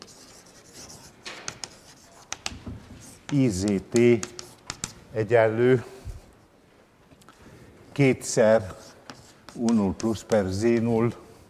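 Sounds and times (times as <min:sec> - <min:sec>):
handwriting scratchy rubbing strokes while working out an equation: 0:00.0 - 0:05.0, 0:08.6 - 0:10.9
sharp taps while handwriting: 0:01.2 - 0:02.6, 0:03.3 - 0:05.0
speech: 0:03.3 - 0:04.4, 0:05.2 - 0:05.9, 0:08.0 - 0:08.8, 0:09.6 - 0:11.2.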